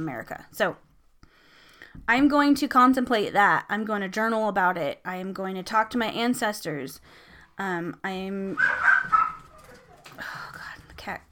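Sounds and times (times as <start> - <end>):
speech: 0.0 - 0.9, 2.0 - 9.2, 11.0 - 11.3
sharp yelps: 8.6 - 9.5
dog barking: 8.6 - 10.0.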